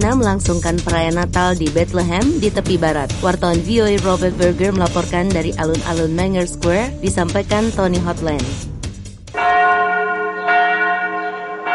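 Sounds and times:
speech: 0:00.1 - 0:08.7
church bells ringing: 0:09.3 - 0:11.7.

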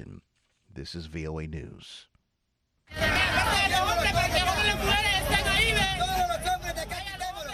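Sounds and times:
speech: 0:00.8 - 0:02.1, 0:02.9 - 0:06.6
large crowd of Central American migrants murmuring and chattering at the Mexico-Guatemala border: 0:02.9 - 0:07.5
low rumble of traffic or engines: 0:02.9 - 0:07.5.

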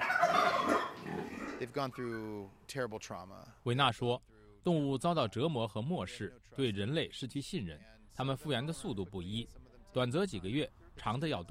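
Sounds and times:
turkeys gobbling in a barn: 0:00.0 - 0:02.5
speech: 0:01.6 - 0:11.4.

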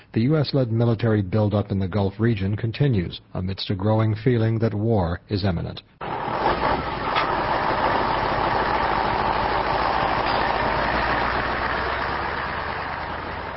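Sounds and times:
speech: 0:00.2 - 0:06.0
heavy truck engines idling: 0:06.0 - 0:13.5.

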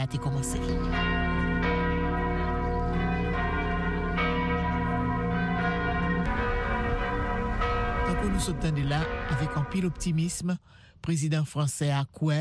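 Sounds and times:
speech: 0:00.0 - 0:01.0, 0:08.4 - 0:12.4
cathedral church bells pealing: 0:00.0 - 0:10.6.

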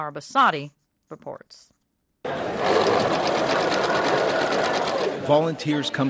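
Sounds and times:
speech: 0:00.0 - 0:06.0
sewing machine stitching headscarves at a community center in Christchurch, New Zealand: 0:02.3 - 0:05.5.

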